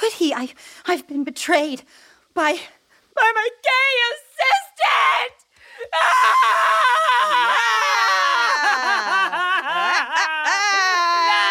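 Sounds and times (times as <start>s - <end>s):
speech: 0.0s - 8.3s
loud sustained high-pitched scream: 4.8s - 9.2s
laughter: 6.3s - 11.5s.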